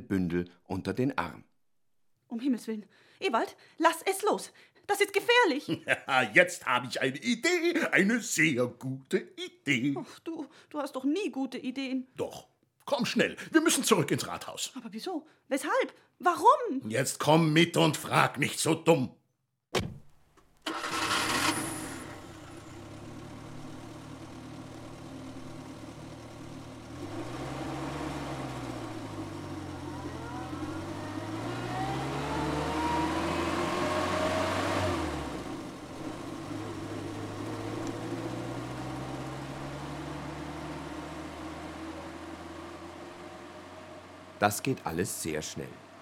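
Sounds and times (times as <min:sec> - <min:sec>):
speech: 0:00.1 - 0:01.5, 0:02.3 - 0:20.0, 0:44.4 - 0:45.9
laughter: 0:05.7 - 0:06.5
car door thump: 0:19.8 - 0:20.2
car engine cranking, idling and revving as the car drives off: 0:20.6 - 0:46.0.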